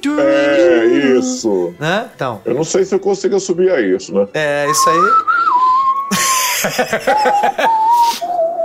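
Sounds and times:
speech: 0.0 - 0.5, 1.2 - 8.3
person whistling a well-known film theme melody: 4.6 - 8.6
breathy laughter: 6.1 - 8.1.

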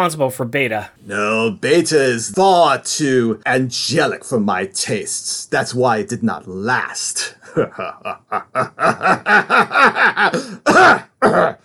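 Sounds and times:
speech: 0.0 - 11.6
laughter: 7.4 - 11.6
rhythmic guttural throat clearing: 7.6 - 8.4, 10.3 - 11.6
heavy harsh coughs: 10.2 - 11.6.

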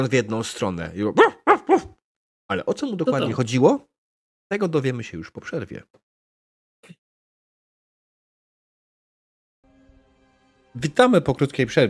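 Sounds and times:
speech: 0.0 - 1.9, 2.5 - 3.9, 4.5 - 6.0, 6.8 - 7.0, 10.8 - 11.8
human voice imitating wolfdog barks: 1.2 - 2.0.

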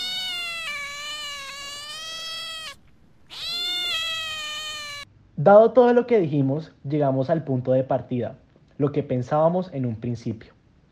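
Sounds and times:
cat long drawn-out meows with wavering pitch: 0.0 - 5.1
speech: 5.4 - 10.6.

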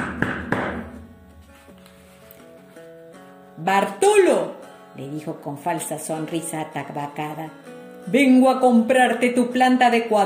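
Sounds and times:
hand with rings knocking on a house door: 0.0 - 1.0
speech: 3.6 - 10.2.

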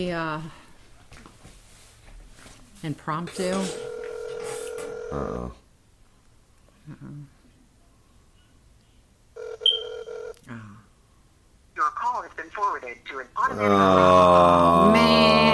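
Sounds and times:
speech: 0.0 - 1.2, 2.8 - 3.9, 5.1 - 5.6, 6.9 - 7.4, 11.8 - 15.5
phone ringing: 3.4 - 5.3, 9.4 - 10.4
loud sustained ringtone: 9.6 - 10.1.

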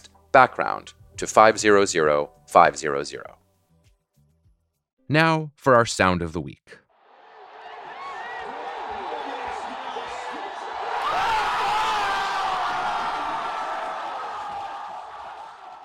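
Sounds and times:
speech: 0.4 - 3.4, 5.1 - 6.8
baseball crowd cheering a pennant victory: 6.9 - 15.8.

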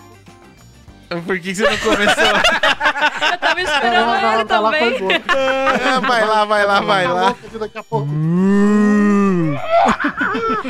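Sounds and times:
speech: 1.1 - 10.6
laughter: 1.6 - 7.8, 9.2 - 10.6
person imitating a cow mooing: 8.0 - 9.8.

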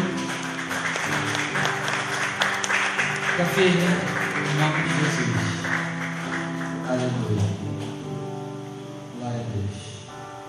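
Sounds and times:
large group applauding after a prayer: 0.0 - 8.0
speech: 3.4 - 5.7.

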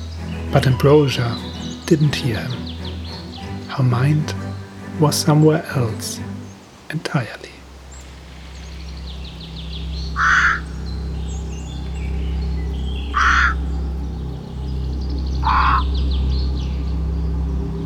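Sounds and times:
steady low hum: 0.0 - 17.8
speech: 0.5 - 2.6, 3.8 - 4.4, 5.0 - 6.3, 6.9 - 7.6
bedraggled crow cawing in an old beech tree: 10.1 - 11.0, 13.1 - 13.7, 15.4 - 15.9.

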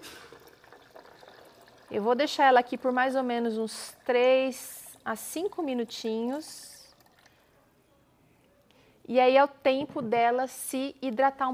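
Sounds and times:
boiling water pouring over dry cashew nuts in a bowl: 0.0 - 4.9, 5.5 - 7.4
speech: 1.9 - 6.7, 9.1 - 11.5.

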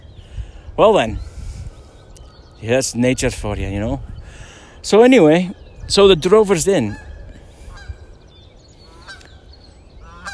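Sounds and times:
low rumble of wind or noise: 0.0 - 10.3
speech: 0.8 - 1.3, 2.6 - 4.1, 4.8 - 7.0
Canada geese honking outdoors: 6.5 - 8.1, 8.8 - 10.3.

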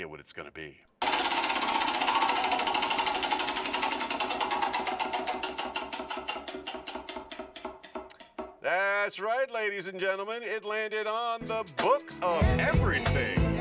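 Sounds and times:
speech: 0.0 - 0.9, 8.7 - 13.5
prize wheel spinning with ratchet ticking: 1.0 - 7.1.

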